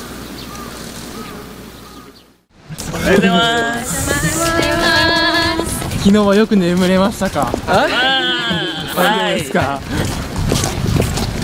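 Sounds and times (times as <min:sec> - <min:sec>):
outdoor noise: 0:00.0 - 0:11.4
small birds chirping in the morning: 0:00.2 - 0:02.4
laughter: 0:02.8 - 0:05.9, 0:07.7 - 0:10.2
speech: 0:03.1 - 0:04.0, 0:06.0 - 0:08.1, 0:09.0 - 0:10.2.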